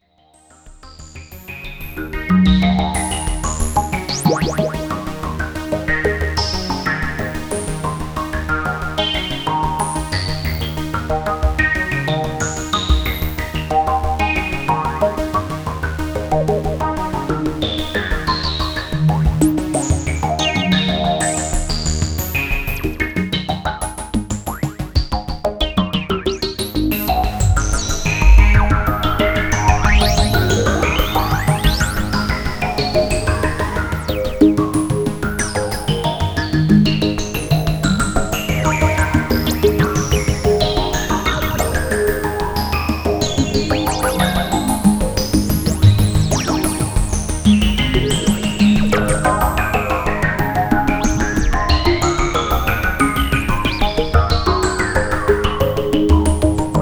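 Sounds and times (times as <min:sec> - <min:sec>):
JupiterX Jupiter8 synthesizer sequence with filter modulation: 0:00.9 - 0:56.7.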